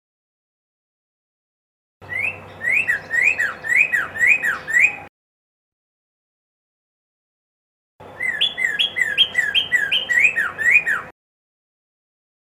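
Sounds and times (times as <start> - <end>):
red-crested cardinal singing short looping whistled phrases: 2.0 - 5.1, 8.2 - 11.1.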